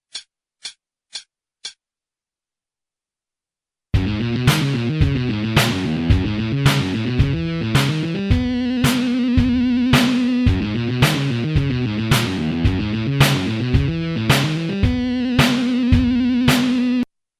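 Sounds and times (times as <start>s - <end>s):
bebop backing track: 4.0s - 17.0s.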